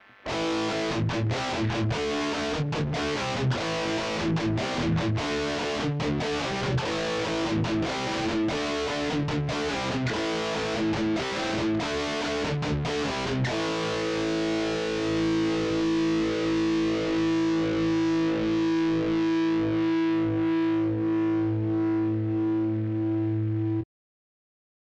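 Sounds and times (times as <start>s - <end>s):
SansAmp British high gain amplifier tone: 0.0s - 23.8s.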